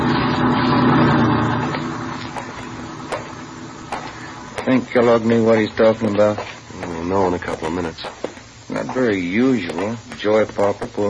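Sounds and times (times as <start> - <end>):
truck engine rumbling while driving past: 0.0 - 4.6
speech: 4.7 - 11.0.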